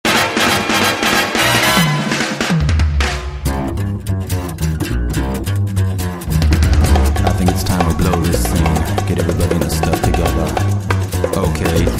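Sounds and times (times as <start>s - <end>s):
music: 0.0s - 11.9s.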